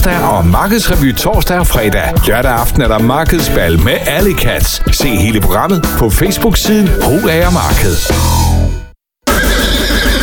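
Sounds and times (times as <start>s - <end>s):
speech: 0.0s - 8.5s
horse neighing at a trotting race: 9.2s - 10.2s.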